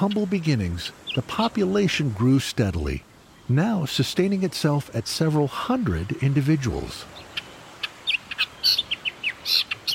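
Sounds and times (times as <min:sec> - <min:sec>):
speech: 0:00.0 - 0:07.2
Nihoa millerbird singing with high chirps and buzzy trills: 0:00.9 - 0:01.6, 0:07.0 - 0:09.9.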